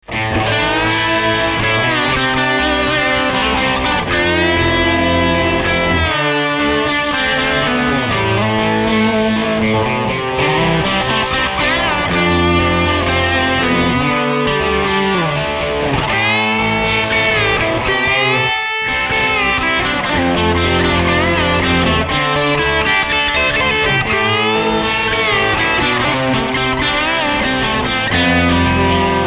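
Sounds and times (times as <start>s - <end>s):
twangy guitars: 0.0s - 29.2s.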